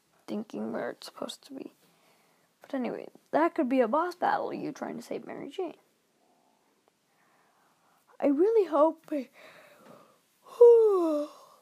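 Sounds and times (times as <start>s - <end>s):
speech: 0.3s - 1.8s, 2.7s - 5.8s, 8.2s - 9.6s
person yawning: 10.4s - 11.6s.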